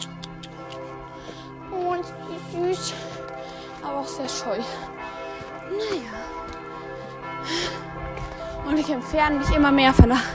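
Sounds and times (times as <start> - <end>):
church bells ringing with overlapping sustained tones: 0.0 - 10.3
speech: 4.0 - 5.0, 5.7 - 6.5, 8.7 - 10.3.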